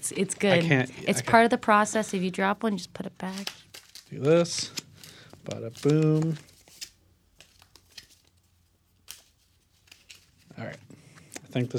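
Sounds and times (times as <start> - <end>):
speech: 0.0 - 4.8, 5.4 - 6.5, 11.6 - 11.7
deck of cards being shuffled: 3.2 - 11.4.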